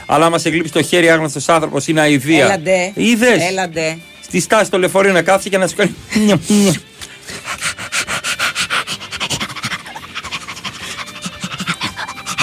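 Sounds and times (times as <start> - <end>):
speech: 0.1 - 6.9
person imitating a dog panting on a bus: 6.5 - 12.4.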